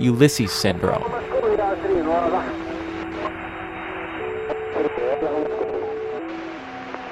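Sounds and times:
speech: 0:00.0 - 0:01.3
steady tonal hums shifting pitch on marine radio: 0:00.0 - 0:07.1
crackly marine radio transmissions of fishermen and yachts on scanners: 0:01.0 - 0:07.1.

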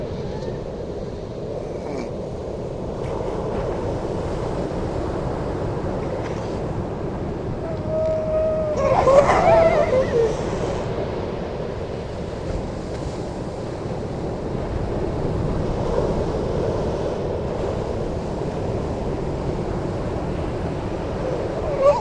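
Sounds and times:
breaking waves roaring at Horsey Gap, Norfolk, England: 0:00.0 - 0:21.9
grey seal giving a tonal moan at Horsey Gap, Norfolk, England: 0:07.6 - 0:10.9, 0:21.1 - 0:21.9.

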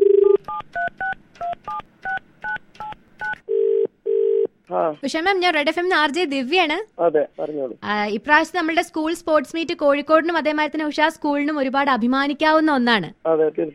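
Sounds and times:
telephone ringback tones: 0:00.0 - 0:00.6, 0:03.5 - 0:04.5
phone keypad dual-tone dialing beeps: 0:00.0 - 0:04.5
speech: 0:04.7 - 0:13.7.

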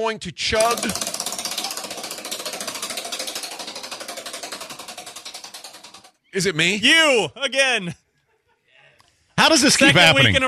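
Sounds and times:
speech: 0:00.0 - 0:01.2, 0:06.3 - 0:08.0, 0:09.5 - 0:10.4
prize wheel spinning and clicking: 0:00.4 - 0:07.1.

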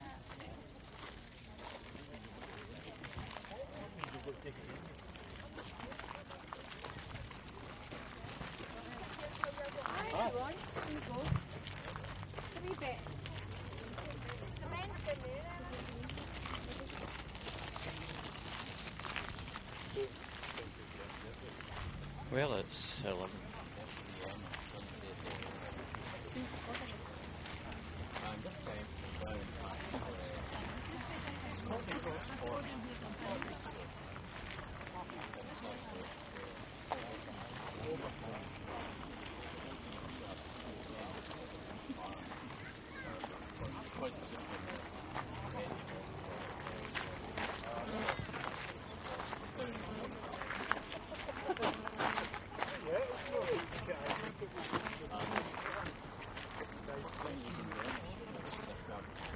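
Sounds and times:
car boot sale ambience in the Clyde valley: 0:00.0 - 0:59.3.

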